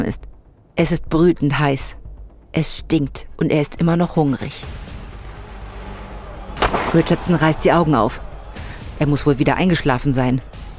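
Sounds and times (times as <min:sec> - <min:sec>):
speech: 0:00.0 - 0:04.8, 0:06.9 - 0:08.3, 0:09.0 - 0:10.6
single sharp gunshot: 0:06.5 - 0:07.7.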